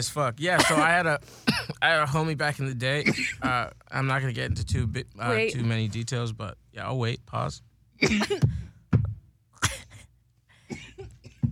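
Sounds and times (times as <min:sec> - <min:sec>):
speech: 0:00.0 - 0:08.6
woman coughing in sharp bursts: 0:00.6 - 0:01.8, 0:03.0 - 0:03.6, 0:08.0 - 0:08.7, 0:09.6 - 0:11.5.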